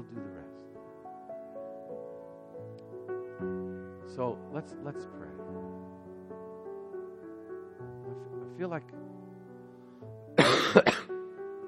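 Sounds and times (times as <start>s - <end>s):
faint steady hum: 0.0s - 11.6s
speech: 4.2s - 5.4s, 8.6s - 8.9s
preacher coughing while leading a prayer: 10.4s - 11.1s.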